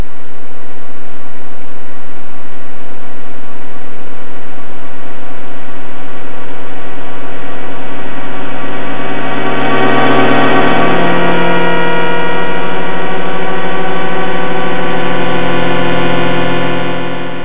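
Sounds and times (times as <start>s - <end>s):
sonified millisecond pulsars in a globular cluster as buzzing tones: 7.0s - 17.4s.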